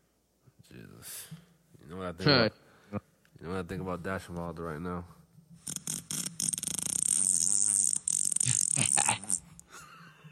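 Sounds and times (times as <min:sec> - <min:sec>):
speech: 0:00.8 - 0:05.2
person blowing a raspberry with lips imitating a fart: 0:05.6 - 0:09.7.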